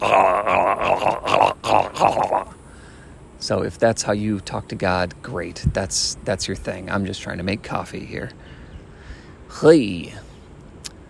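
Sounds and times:
voice imitating a man's harsh guttural grunting: 0.0 - 2.6
speech: 3.5 - 8.6, 9.5 - 10.2.

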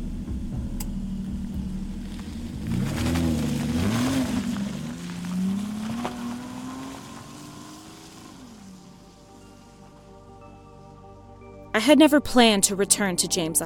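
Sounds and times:
car engine revving and driving off: 0.0 - 10.1
speech: 11.8 - 13.6.

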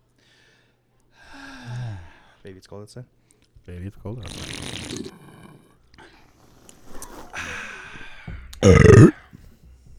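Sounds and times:
speech: 2.5 - 5.3
croaky throat sounds and soft rumbles: 4.2 - 5.7, 8.6 - 9.2
loud drawn-out burp: 8.6 - 9.2.

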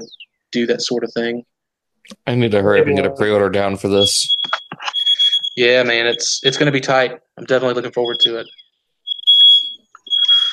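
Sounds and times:
speech: 0.0 - 4.6, 5.6 - 8.6
smoke alarm beeping: 3.9 - 6.9, 7.6 - 10.5.

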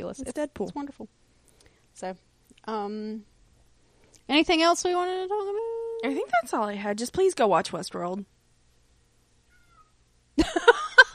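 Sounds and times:
speech: 0.0 - 1.2, 2.0 - 3.3, 4.2 - 8.3
domestic cat meowing: 9.5 - 10.0.

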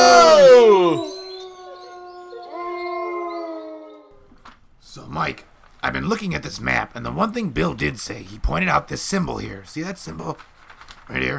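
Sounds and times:
pack of wolves howling: 0.0 - 4.2
speech: 5.2 - 10.5, 11.1 - 11.3.

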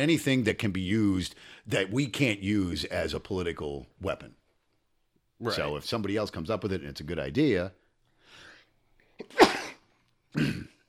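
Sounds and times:
speech: 0.0 - 4.4, 5.4 - 7.8, 10.3 - 10.6
person sneezing: 9.2 - 10.8.

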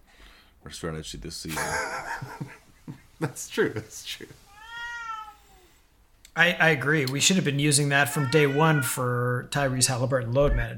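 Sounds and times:
speech: 0.6 - 4.4, 6.4 - 10.7
laughter: 1.5 - 4.3
cat meowing: 4.5 - 5.8, 7.9 - 9.1.

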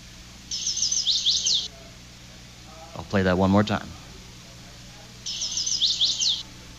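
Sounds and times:
faint low outdoor hum: 0.0 - 6.7
bird singing at night in Maine: 0.5 - 1.8, 5.2 - 6.5
speech: 3.0 - 4.0.

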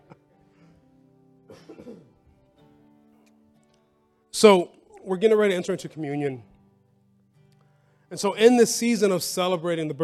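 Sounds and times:
person coughing in a room: 1.5 - 2.2
speech: 4.4 - 6.5, 8.1 - 10.0.

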